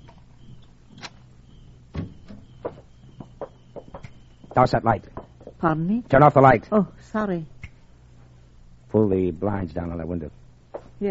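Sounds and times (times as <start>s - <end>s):
heavier clunk of a door being opened: 1.9s - 3.2s
speech: 4.6s - 7.5s, 9.0s - 10.4s.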